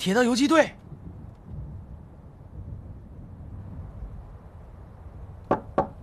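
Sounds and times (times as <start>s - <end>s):
sharp loud knocks on a villager's door: 5.5s - 6.0s.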